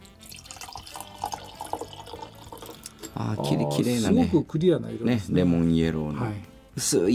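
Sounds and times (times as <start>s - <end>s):
Château Mercian Koshu 2024 white wine pouring into a glass: 0.0s - 3.9s
speech: 3.2s - 7.1s.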